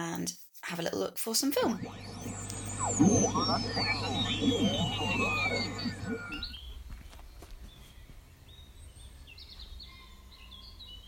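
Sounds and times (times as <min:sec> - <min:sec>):
speech: 0:00.2 - 0:06.5
birds chirping in a back garden near sunset: 0:01.8 - 0:06.8.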